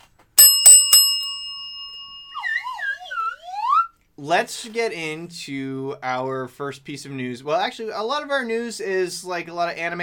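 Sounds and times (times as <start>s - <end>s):
bright metallic bell ringing: 0.4s - 2.8s
speech: 4.2s - 10.0s.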